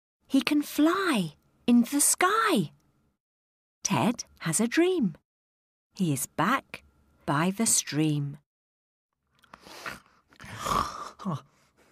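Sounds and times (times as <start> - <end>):
speech: 0.3 - 2.8, 3.8 - 5.2, 6.0 - 8.4, 9.7 - 11.5
loud snore with snorting bursts and throaty rumble: 9.7 - 11.4.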